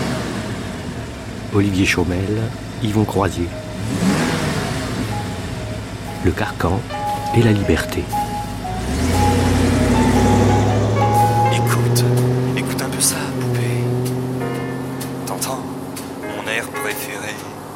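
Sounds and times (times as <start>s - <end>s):
car engine rising in pitch as the vehicle accelerates: 0.0s - 17.7s
speech: 1.5s - 4.1s, 6.2s - 8.2s.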